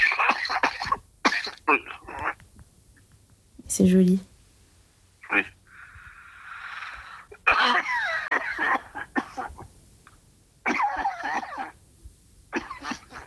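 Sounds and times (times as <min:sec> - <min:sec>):
harsh chesty coughing fits: 0:00.0 - 0:02.4, 0:07.4 - 0:09.6, 0:10.6 - 0:11.8, 0:12.5 - 0:13.2
speech: 0:03.8 - 0:04.3.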